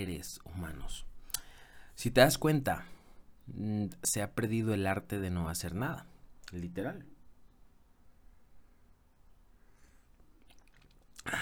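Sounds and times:
speech: 0.0 - 1.1, 2.0 - 7.1, 11.2 - 11.4
person sipping hot drink from a cup: 9.8 - 11.4
small wet mouth clicks: 10.1 - 11.3
faint mouth and swallowing noises: 10.2 - 11.4
brief louder slurp: 10.4 - 11.4.

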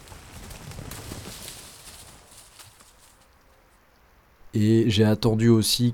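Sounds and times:
horse carrying a rider walking through snow in the Jura: 0.0 - 3.6
speech: 4.6 - 5.9.

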